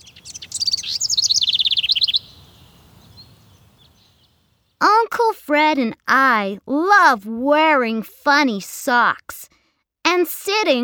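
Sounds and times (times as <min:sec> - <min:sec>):
birds chirping and trilling: 0:00.0 - 0:04.7
speech: 0:05.2 - 0:09.4, 0:10.0 - 0:10.8.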